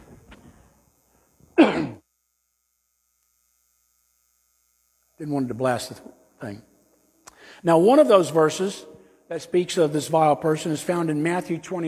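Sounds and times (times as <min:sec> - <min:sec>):
sharp loud cough or throat clearing: 0:01.6 - 0:02.0
speech: 0:05.2 - 0:06.7, 0:07.5 - 0:11.8.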